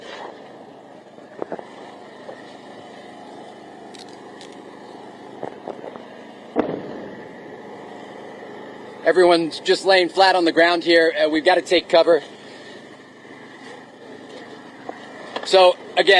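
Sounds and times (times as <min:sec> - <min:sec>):
explosions from rocket interceptions: 0:06.5 - 0:07.3
speech: 0:09.1 - 0:12.4, 0:15.5 - 0:16.1.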